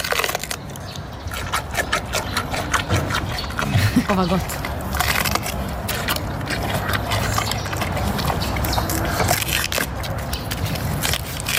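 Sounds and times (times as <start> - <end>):
giant panda chewing bamboo stalks: 0.0 - 11.5
speech: 4.1 - 4.6.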